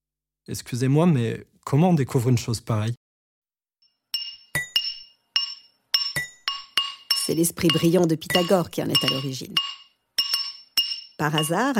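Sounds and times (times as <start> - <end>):
speech: 0.5 - 3.0, 7.3 - 9.8, 11.2 - 11.7
blacksmiths' hammers striking red-hot iron: 4.2 - 11.7.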